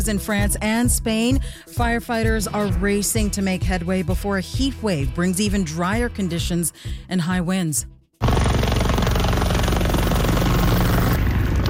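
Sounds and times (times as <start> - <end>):
speech: 0.0 - 8.0
helicopter flying over wildfire with rotor thumping: 8.2 - 11.6.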